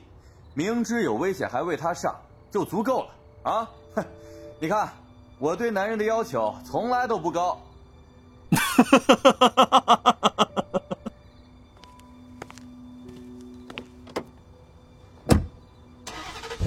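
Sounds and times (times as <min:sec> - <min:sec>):
speech: 0:00.6 - 0:07.7, 0:08.5 - 0:10.5
laughter: 0:08.5 - 0:11.2
car engine starting at night: 0:15.3 - 0:16.6.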